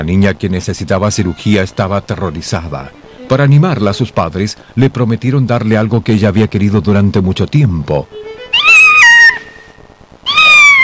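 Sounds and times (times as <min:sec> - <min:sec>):
speech: 0:00.0 - 0:08.4
kitten meowing: 0:08.3 - 0:09.6, 0:10.2 - 0:10.8.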